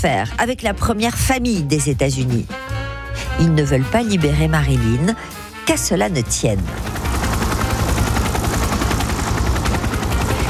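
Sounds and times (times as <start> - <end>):
speech: 0.0 - 2.6, 3.2 - 7.0
helicopter rotor thumping: 6.6 - 10.4.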